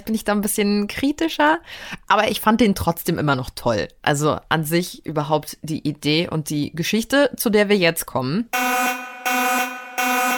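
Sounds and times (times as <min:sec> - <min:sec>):
speech: 0:00.0 - 0:09.0
harsh raspy electronic buzzing alarm bursts: 0:08.6 - 0:10.3.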